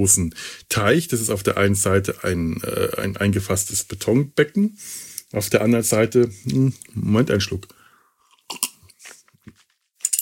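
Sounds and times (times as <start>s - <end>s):
speech: 0.0s - 7.8s
sipping tea: 8.2s - 9.8s.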